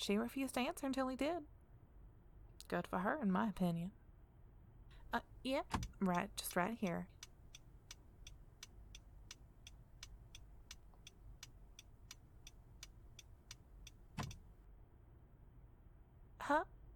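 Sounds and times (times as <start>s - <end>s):
speech: 0.0s - 1.6s, 2.7s - 4.0s, 5.1s - 7.2s, 16.5s - 16.8s
car pulling up with low steady engine rumble: 4.9s - 14.6s
rapid even ticking: 5.0s - 14.6s.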